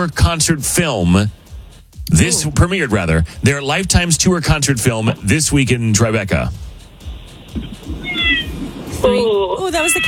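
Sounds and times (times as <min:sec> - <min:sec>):
speech: 0:00.0 - 0:01.4, 0:02.1 - 0:06.7, 0:09.0 - 0:10.0
cat meowing: 0:07.8 - 0:10.0.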